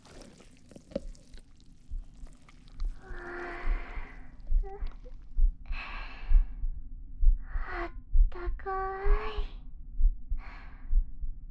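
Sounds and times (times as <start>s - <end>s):
slow heartbeat thumping: 1.9s - 11.4s.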